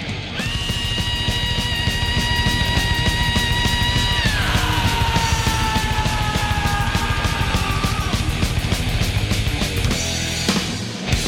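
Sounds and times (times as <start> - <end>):
loud dense distorted thrash metal guitars: 0.0 - 11.2
thrash metal singer's long piercing screaming yell: 0.4 - 8.6
pounding thrash metal drums: 0.4 - 11.2.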